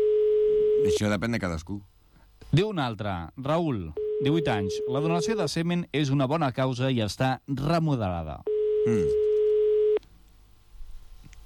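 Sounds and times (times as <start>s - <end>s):
telephone ringback tone during an unanswered call: 0.0s - 1.0s, 4.0s - 5.4s, 8.5s - 10.0s
faint low noise: 0.0s - 11.4s
speech: 0.8s - 1.9s, 2.5s - 9.2s.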